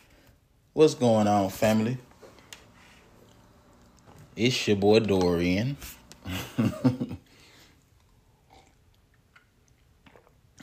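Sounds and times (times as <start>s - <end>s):
speech: 0.8s - 2.1s, 4.4s - 7.2s
laughter: 6.2s - 7.3s
person sipping a cup of coffee: 8.1s - 9.0s.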